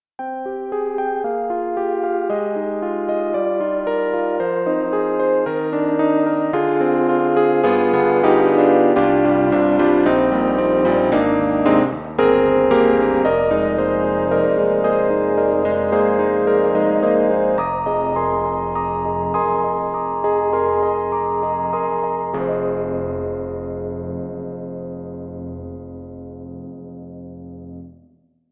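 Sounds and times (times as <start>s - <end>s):
Yamaha CP80 electric piano with moaning chorus: 0.2s - 27.9s.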